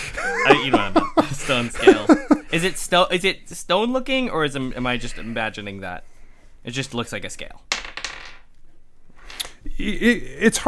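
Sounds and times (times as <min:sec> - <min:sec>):
laughter: 0:00.0 - 0:02.8
speech: 0:00.4 - 0:07.9, 0:09.7 - 0:10.6
dice rattling on a table: 0:07.7 - 0:08.5.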